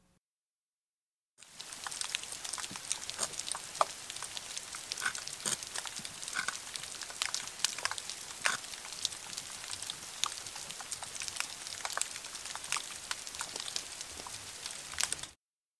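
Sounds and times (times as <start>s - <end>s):
underwater crackling from snapping shrimp: 1.9s - 13.8s
underwater spiny lobsters scratching: 4.9s - 6.7s.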